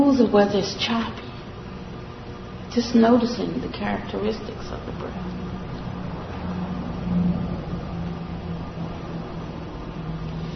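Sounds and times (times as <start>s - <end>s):
speech: 0.1s - 1.2s, 2.7s - 5.5s
road traffic rumble: 4.2s - 10.5s
vehicle passing: 5.1s - 10.5s.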